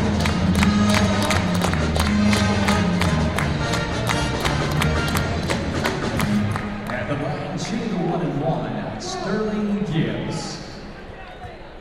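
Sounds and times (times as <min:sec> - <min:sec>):
brass band playing during a basketball game in an arena: 0:00.0 - 0:06.8
crowd noise in a big arena: 0:00.0 - 0:11.8.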